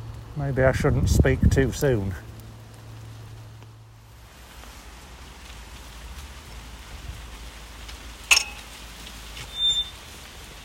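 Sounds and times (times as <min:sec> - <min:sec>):
light rain pattering: 0:00.0 - 0:10.6
speech: 0:00.4 - 0:02.3
sharp drip or tick: 0:08.3 - 0:08.8.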